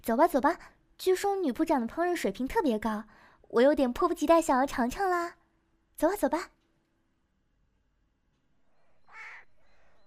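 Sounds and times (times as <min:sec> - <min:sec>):
speech: 0:00.0 - 0:05.4, 0:06.0 - 0:06.6
crow cawing: 0:09.1 - 0:09.5.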